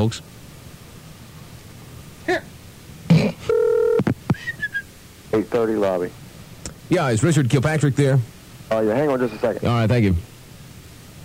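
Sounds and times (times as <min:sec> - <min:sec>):
speech: 0:00.0 - 0:00.4, 0:05.4 - 0:06.2, 0:06.9 - 0:10.3
longer steady telephone tone: 0:03.5 - 0:04.1.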